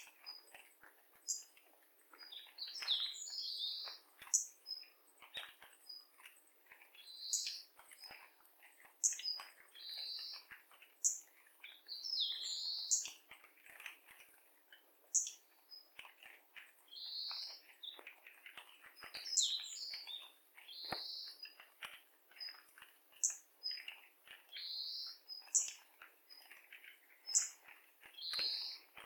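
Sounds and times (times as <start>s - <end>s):
bird chirping and twittering: 0.0s - 13.4s, 15.1s - 29.0s.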